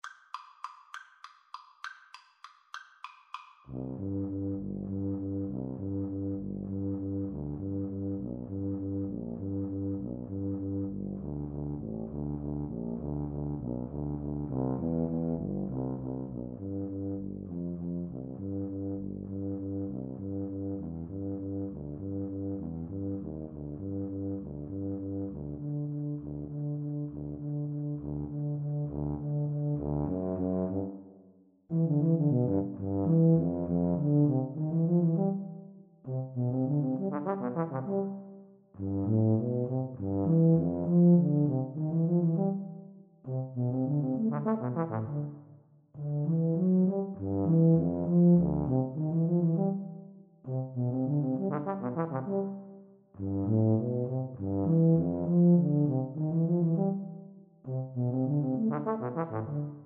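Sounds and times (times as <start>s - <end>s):
tuba duet playing a waltz: 3.7s - 31.0s, 31.7s - 45.4s, 46.0s - 59.8s.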